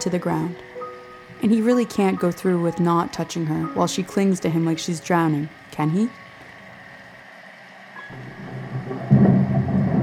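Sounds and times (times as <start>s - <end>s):
speech: 0.0s - 0.7s, 1.4s - 6.2s
loud crack of thunder rolling heavily: 8.1s - 10.0s
low steady rumble: 8.1s - 10.0s.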